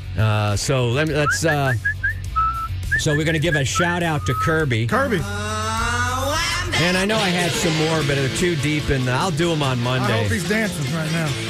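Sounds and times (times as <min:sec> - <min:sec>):
speech: 0:00.2 - 0:02.0, 0:03.0 - 0:05.6, 0:06.7 - 0:11.4
person whistling a bouncy pop melody: 0:01.1 - 0:04.7.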